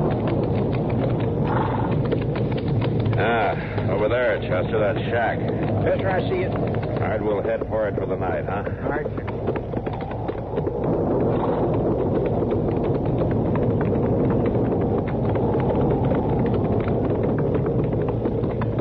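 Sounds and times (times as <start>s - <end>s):
loud constant rush of wind: 0.0s - 18.8s
low rumble: 0.0s - 18.8s
ridden horses' hooves clip-clopping: 0.0s - 18.8s
speech: 4.1s - 9.4s.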